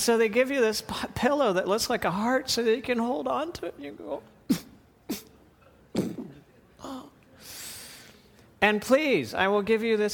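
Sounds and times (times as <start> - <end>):
speech: 0.0 - 4.6, 8.6 - 10.1
person giving short strained coughs: 4.5 - 5.3, 5.9 - 7.2.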